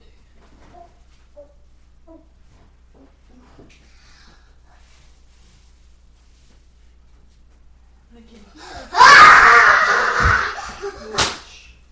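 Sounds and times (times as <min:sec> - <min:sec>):
child screaming: 0:08.8 - 0:10.6
sharp smacking sound: 0:11.2 - 0:11.6.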